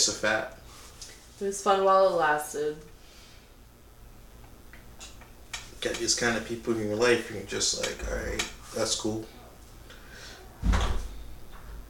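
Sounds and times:
speech: 0.0 - 0.6, 1.4 - 2.9, 5.8 - 9.4, 10.6 - 11.0
door slamming shut hard: 10.6 - 11.2.

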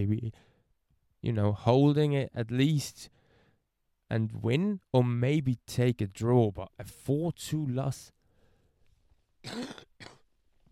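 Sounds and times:
speech: 0.0 - 0.5, 1.2 - 3.2, 4.1 - 8.2, 9.4 - 10.1
coughing: 9.4 - 10.3.

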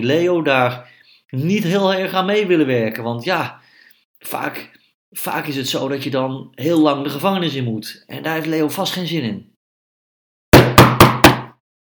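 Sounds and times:
speech: 0.0 - 3.6, 4.2 - 9.5
knocking on a large wooden door: 10.6 - 11.6.

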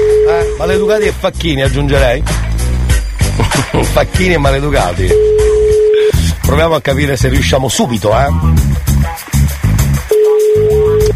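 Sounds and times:
telephone ringback tone of an outgoing call: 0.0 - 0.6, 5.0 - 6.2, 10.1 - 11.1
loud thumping rhythmic music track: 0.0 - 11.1
speech: 0.7 - 2.4, 3.4 - 5.5, 6.5 - 9.3
laughter: 3.3 - 4.6.

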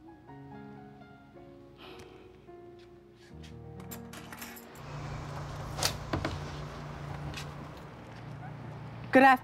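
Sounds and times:
door chain lock worked with metallic rattles and sharp clinks: 3.8 - 4.8
steady low tonal hum: 4.8 - 9.2
speech: 9.2 - 9.4.

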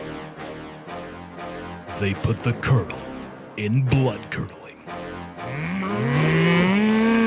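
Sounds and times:
speech: 2.0 - 4.6
cow mooing: 5.4 - 7.2.

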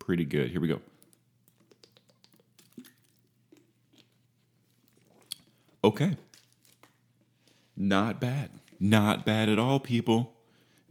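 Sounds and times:
speech: 0.1 - 1.0, 5.9 - 6.3, 7.8 - 10.8
sipping a non-alcoholic drink: 0.9 - 5.8
lip smacks: 1.0 - 7.0.

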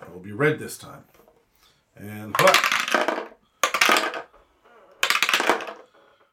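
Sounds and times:
speech: 0.2 - 1.2, 2.0 - 3.0
dice rolling on a hard table: 2.3 - 6.2.

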